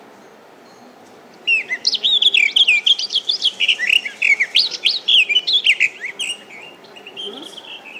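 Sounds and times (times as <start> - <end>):
garden warbler song played from an audio pen speaker: 1.5 - 7.9.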